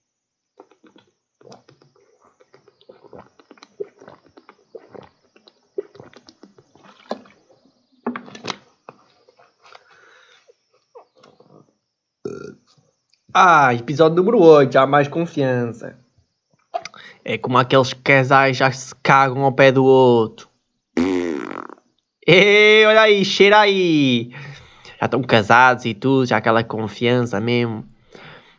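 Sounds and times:
person drinking water with wet gulps and swallows: 0:00.6 - 0:12.6, 0:16.8 - 0:17.1
speech: 0:13.4 - 0:16.0, 0:17.3 - 0:20.5, 0:22.3 - 0:24.4, 0:25.0 - 0:27.9.

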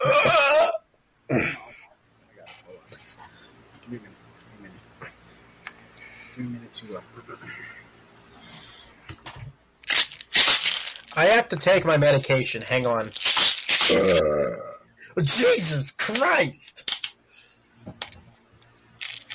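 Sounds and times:
voice imitating a loud drawn-out burp: 0:00.0 - 0:01.7, 0:13.7 - 0:14.9
speech: 0:11.2 - 0:13.2, 0:13.9 - 0:16.8.

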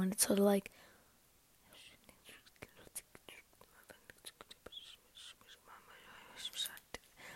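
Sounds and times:
speech: 0:00.0 - 0:00.9
soft ASMR whispering: 0:01.6 - 0:07.3.

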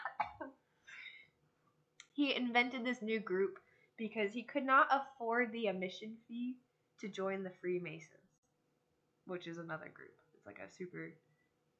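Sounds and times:
person coughing: 0:00.0 - 0:00.5
speech: 0:02.2 - 0:08.2, 0:09.3 - 0:11.2.

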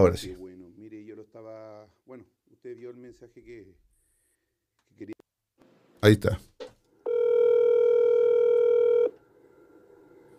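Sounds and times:
speech: 0:00.0 - 0:00.4, 0:02.2 - 0:03.8, 0:05.0 - 0:06.5
electronic telephone dialing tone as a call is placed: 0:07.1 - 0:09.2.

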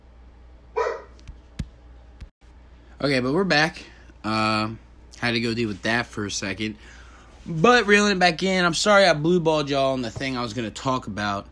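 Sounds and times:
dog barking: 0:00.8 - 0:01.2
speech: 0:03.0 - 0:11.4.

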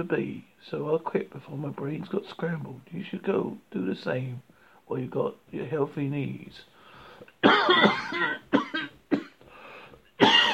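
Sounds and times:
speech: 0:00.0 - 0:06.7, 0:07.4 - 0:08.6
person coughing: 0:07.4 - 0:09.4, 0:10.2 - 0:10.5.

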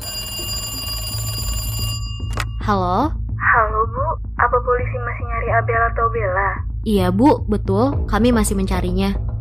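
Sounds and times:
telephone ringing with a shrill electronic tone: 0:00.0 - 0:02.6
speech: 0:02.7 - 0:09.3.

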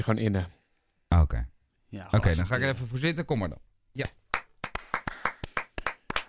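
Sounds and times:
speech: 0:00.0 - 0:04.2
small group clapping: 0:04.0 - 0:06.2.

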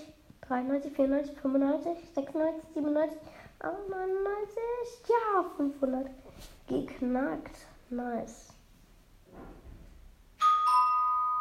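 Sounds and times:
speech: 0:00.5 - 0:08.5
soft rustle: 0:06.0 - 0:07.0
doorbell chiming with two bright tones: 0:10.4 - 0:11.3.

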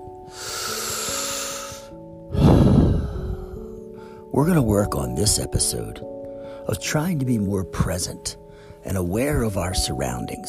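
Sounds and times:
soft sustained music tones: 0:00.0 - 0:10.4
deep breath during a relaxation exercise: 0:00.3 - 0:04.3, 0:06.3 - 0:06.6, 0:08.4 - 0:08.8
speech: 0:04.4 - 0:10.4.

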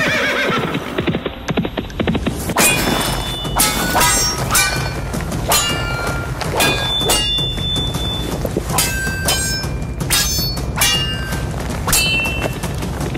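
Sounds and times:
horses whinnying: 0:00.0 - 0:01.1
horse hooves clopping: 0:00.0 - 0:13.1
broadsword and halberd clashing in mounted combat: 0:02.6 - 0:13.1.

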